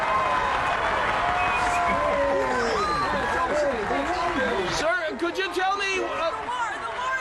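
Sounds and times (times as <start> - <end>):
large lively crowd with overlapping voices and excited shouts: 0.0 - 7.1.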